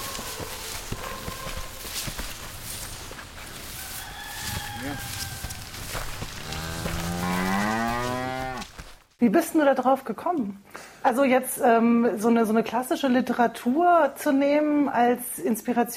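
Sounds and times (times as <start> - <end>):
steady rough noise: 0.0 - 10.2
cows mooing: 3.4 - 8.9
speech: 9.2 - 15.9.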